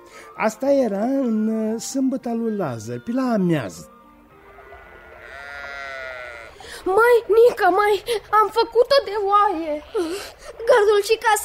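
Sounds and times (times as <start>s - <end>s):
speech: 0.4s - 3.9s, 6.8s - 11.4s
dying goat bleating after being struck by a falling rock: 4.4s - 7.6s, 9.4s - 10.4s.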